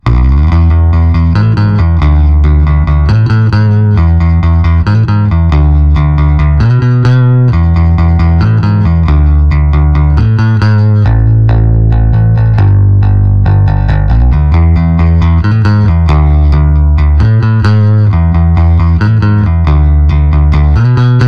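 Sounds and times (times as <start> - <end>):
saturated bass: 0.0 - 21.2.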